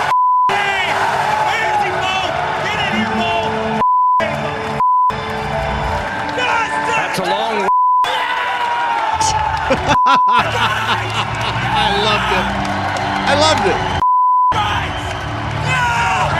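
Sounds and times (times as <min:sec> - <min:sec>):
loud rowdy crowd cheering and shouting: 0:00.0 - 0:16.3
sharp censor bleeps: 0:02.9 - 0:04.2
laughter: 0:09.2 - 0:13.9.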